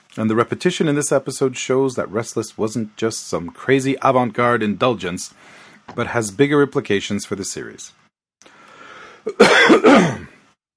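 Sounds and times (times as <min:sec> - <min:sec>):
faint hiss: 0:00.0 - 0:10.6
speech: 0:00.2 - 0:08.0, 0:09.2 - 0:10.2
person coughing: 0:09.3 - 0:10.4.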